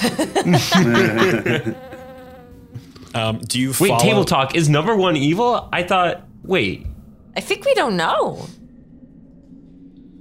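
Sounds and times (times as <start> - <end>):
speech: 0.0 - 1.9, 3.1 - 8.6
laughter: 0.0 - 2.2
voice imitating a little bee buzzing: 1.2 - 2.6.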